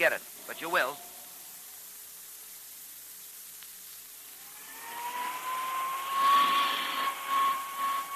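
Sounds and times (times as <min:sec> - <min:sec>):
speech: 0:00.0 - 0:01.1
small hand vacuum cleaner running over a coat: 0:04.5 - 0:08.1.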